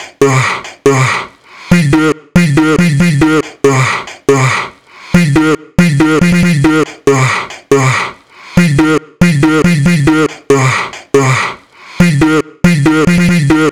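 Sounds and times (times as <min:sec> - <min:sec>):
chopped vocal: 0:00.0 - 0:13.6.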